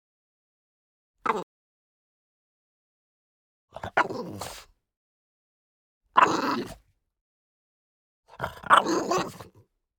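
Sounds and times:
French Bulldog snarling with a rough tonal growl: 3.8s - 4.6s, 6.2s - 6.8s, 8.3s - 9.5s.

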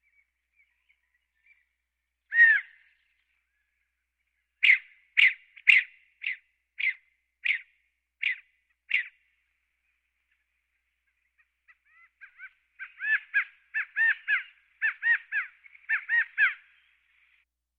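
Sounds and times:
California quail calls with chattering run of notes: 2.3s - 2.8s, 4.6s - 9.2s, 11.1s - 16.8s.

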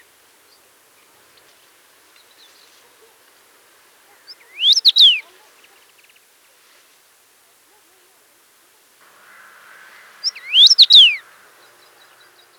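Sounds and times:
low steady hiss: 0.0s - 12.5s
Common rosefinch song: 4.3s - 5.3s, 10.2s - 12.5s.

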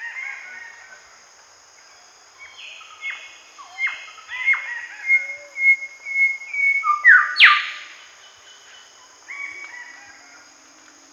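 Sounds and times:
faint continuous high hiss: 1.4s - 11.1s
golden whistler song with ringing whistled notes: 5.1s - 7.8s.

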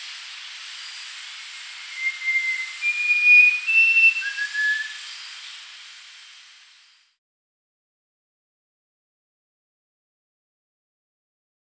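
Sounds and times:
quiet hiss: 0.0s - 7.2s
rufous-crowned babbler whistling: 1.9s - 5.0s.

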